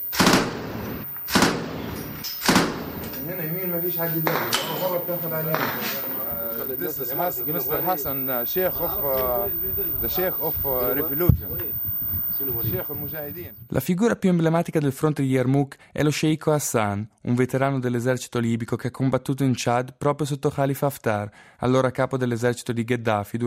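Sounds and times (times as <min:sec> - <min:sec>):
sniper gunshots at a battle front: 0:00.0 - 0:06.2
voices calling: 0:00.9 - 0:13.6
speech: 0:03.3 - 0:23.4.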